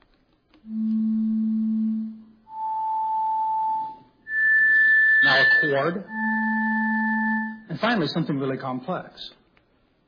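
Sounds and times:
pure tones climbing in pitch: 0:00.6 - 0:08.0
speech: 0:05.6 - 0:06.3, 0:07.8 - 0:09.4.

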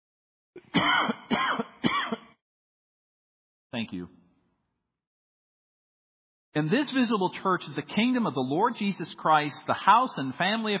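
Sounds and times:
person coughing: 0:00.6 - 0:02.4
speech: 0:00.8 - 0:01.7, 0:03.7 - 0:04.2, 0:06.6 - 0:10.7.

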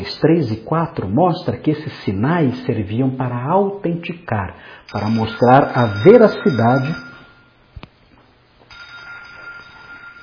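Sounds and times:
speech: 0:00.2 - 0:07.1
telephone ringing: 0:04.9 - 0:07.6, 0:08.7 - 0:10.2.

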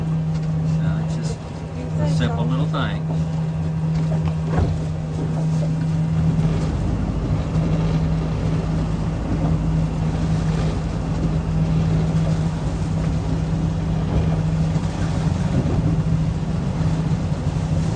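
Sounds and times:
churning water: 0:00.0 - 0:17.9
fishing boat motor droning while turning around: 0:00.0 - 0:17.9
speech: 0:02.1 - 0:03.4
wind noise: 0:06.0 - 0:17.9.

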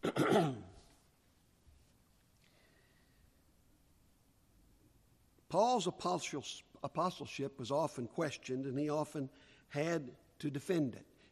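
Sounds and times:
throat-clearing cough: 0:00.0 - 0:00.9
speech: 0:00.2 - 0:00.7, 0:05.5 - 0:11.1.

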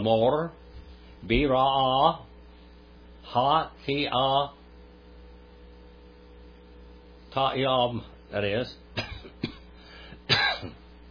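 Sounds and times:
speech: 0:00.0 - 0:00.6, 0:01.2 - 0:02.3, 0:03.3 - 0:04.6, 0:07.4 - 0:09.1
coughing and throat clearing from a person with lungs damaged by propane exposure: 0:09.0 - 0:10.9.

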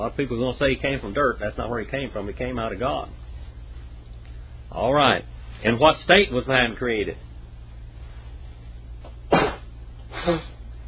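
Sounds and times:
speech: 0:00.0 - 0:03.2, 0:04.7 - 0:07.3, 0:10.2 - 0:10.5
faint low hum: 0:00.0 - 0:10.8
person sneezing: 0:09.3 - 0:10.6.

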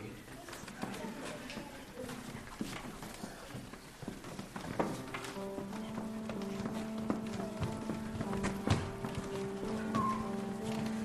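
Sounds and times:
horse hooves clip-clopping at a walking pace: 0:00.3 - 0:11.0.

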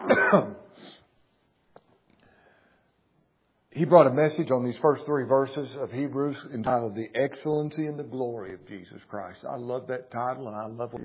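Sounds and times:
person coughing: 0:00.0 - 0:01.0
speech: 0:00.3 - 0:01.0, 0:03.8 - 0:11.0.

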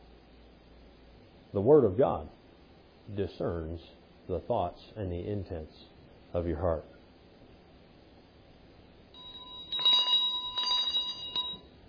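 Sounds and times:
speech: 0:01.5 - 0:02.4, 0:03.1 - 0:06.9
big bell ringing: 0:09.2 - 0:11.8.

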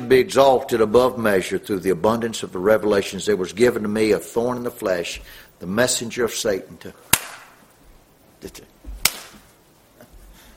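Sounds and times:
speech: 0:00.1 - 0:07.3, 0:08.4 - 0:08.7
sharp crisp slap of a hand: 0:07.1 - 0:07.6, 0:09.0 - 0:09.5
softer smack: 0:09.0 - 0:09.5.

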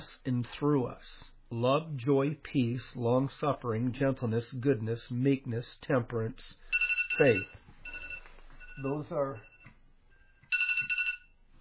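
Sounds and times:
speech: 0:00.2 - 0:07.6, 0:08.8 - 0:09.5
mobile phone ringtone chirping: 0:06.7 - 0:11.4.

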